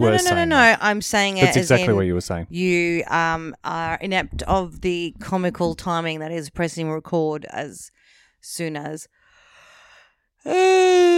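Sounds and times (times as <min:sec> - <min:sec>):
speech: 0:00.0 - 0:09.2, 0:10.4 - 0:11.1
person yawning into microphone: 0:10.4 - 0:11.1.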